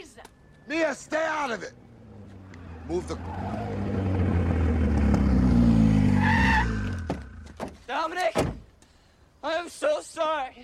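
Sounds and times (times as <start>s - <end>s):
car tires screeching in a skid: 0.4s - 7.6s
car engine roaring: 0.6s - 7.6s
speech: 0.7s - 1.8s, 2.9s - 3.9s, 9.4s - 10.6s.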